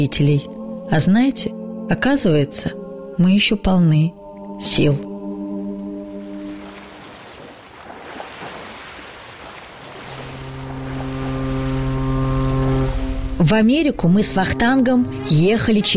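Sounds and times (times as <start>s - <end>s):
speech: 0.0s - 5.1s, 13.4s - 15.9s
12-deck ocean steamship horn blast: 4.5s - 7.1s, 10.0s - 15.9s
rushing sea water: 5.2s - 13.6s
ocean steamship engine rumble: 9.7s - 15.4s.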